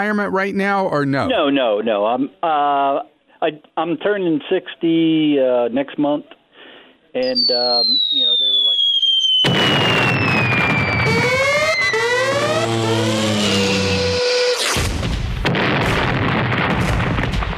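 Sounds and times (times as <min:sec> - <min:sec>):
speech: 0:00.0 - 0:06.4, 0:07.1 - 0:08.4
descending whistling tones: 0:07.2 - 0:14.7
fireworks-like bomb bursts: 0:07.2 - 0:17.5.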